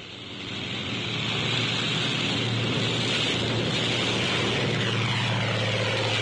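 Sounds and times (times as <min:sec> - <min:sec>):
faint wash like wind or sea: 0:00.0 - 0:06.2
propeller plane engine roaring taking off from aircraft carrier: 0:00.0 - 0:06.2.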